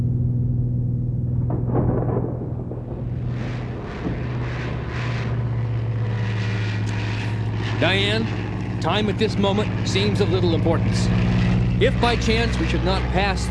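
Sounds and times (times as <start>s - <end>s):
rattling turbulence: 0.0s - 13.4s
small airplane engine droning in flight: 0.0s - 13.4s
rushing wind: 1.4s - 12.4s
speech: 7.8s - 13.4s.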